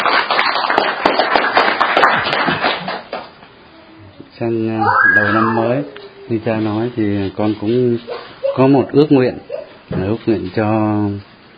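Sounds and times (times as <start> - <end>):
room full of people applauding: 0.0 - 3.3
speech: 4.4 - 11.3.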